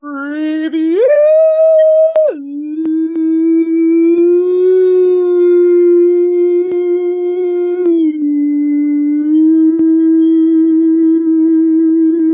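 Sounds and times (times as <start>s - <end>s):
dog howl imitated by a human voice: 0.0s - 12.3s.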